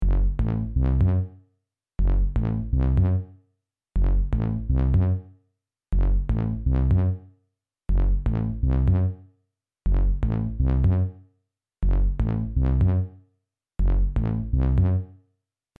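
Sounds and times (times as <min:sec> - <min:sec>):
tuba bass line: 0:00.0 - 0:01.3, 0:02.0 - 0:03.2, 0:04.0 - 0:05.2, 0:05.9 - 0:07.2, 0:07.9 - 0:09.2, 0:09.9 - 0:11.1, 0:11.8 - 0:13.1, 0:13.8 - 0:15.1.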